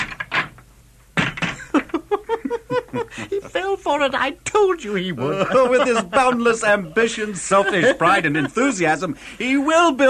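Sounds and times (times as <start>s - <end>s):
door rattling: 0.0s - 2.0s
laughter: 1.6s - 3.9s, 5.0s - 9.2s
speech: 2.9s - 10.0s.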